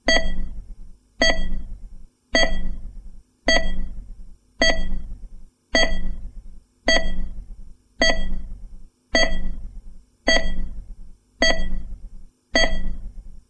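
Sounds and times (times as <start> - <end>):
monitor beep: 0.0 - 0.6, 1.2 - 1.8, 2.4 - 2.9, 3.5 - 4.0, 4.6 - 5.2, 5.8 - 6.3, 6.9 - 7.4, 8.0 - 8.6, 9.2 - 9.7, 10.3 - 10.8, 11.4 - 12.0, 12.6 - 13.2.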